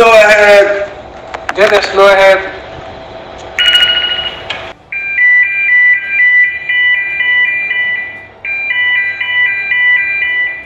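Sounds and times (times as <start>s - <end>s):
low machinery hum: 0.0s - 10.6s
speech: 1.6s - 2.6s
ship engine room electronic alarm with two-tone warble: 3.6s - 10.6s.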